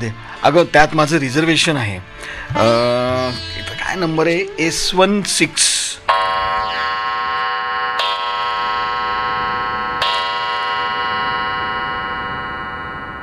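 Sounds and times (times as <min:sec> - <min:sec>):
speech: 0:00.0 - 0:06.0
faulty clock striking the hour: 0:06.1 - 0:13.2.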